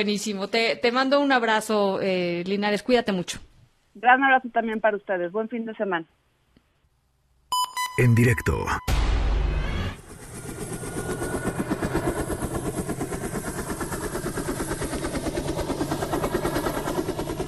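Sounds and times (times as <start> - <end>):
speech: 0.0 - 6.2, 8.0 - 9.0
helicopter rotor thumping: 10.0 - 17.4.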